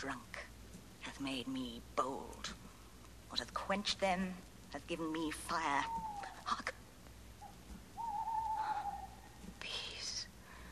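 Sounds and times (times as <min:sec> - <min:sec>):
speech: 0:00.0 - 0:00.3, 0:01.2 - 0:06.7
owl crying with wavering call and harsh screech: 0:05.6 - 0:06.6, 0:07.4 - 0:09.4.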